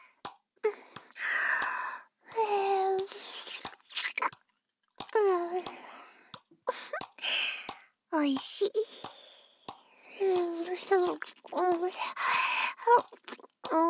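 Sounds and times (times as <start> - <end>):
wet licking sounds: 2.5 - 4.4, 5.0 - 13.8
smacking clicks and slurps: 2.9 - 13.8
speech: 8.2 - 9.1.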